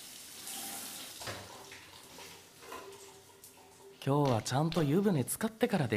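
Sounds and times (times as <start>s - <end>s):
water from a shower running: 0.0s - 4.0s
speech: 4.0s - 5.9s.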